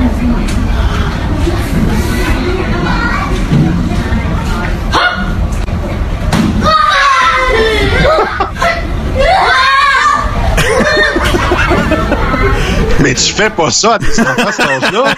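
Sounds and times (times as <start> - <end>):
young children chattering in a classroom: 0.0 - 13.5
roomful of young children shrieking, gasping and shouting at a magic trick: 6.6 - 13.0
laughter: 7.6 - 8.8, 10.4 - 13.4, 14.0 - 15.1
speech: 13.2 - 15.1.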